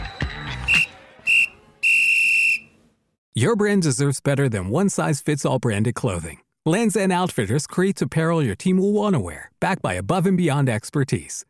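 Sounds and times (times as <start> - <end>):
shrill whistle blasts: 0.0 - 2.8
speech: 3.4 - 11.4.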